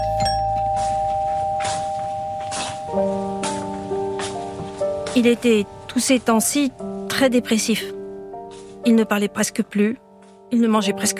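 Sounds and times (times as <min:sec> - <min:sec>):
home doorbell chiming, rung by journalists: 0:00.0 - 0:04.7
speech: 0:05.2 - 0:08.0, 0:08.8 - 0:11.1.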